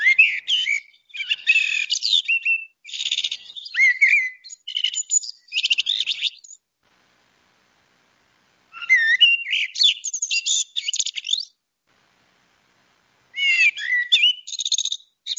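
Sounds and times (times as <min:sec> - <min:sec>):
male common blackbird singing: 0:00.0 - 0:06.6, 0:08.8 - 0:11.5, 0:13.4 - 0:15.3.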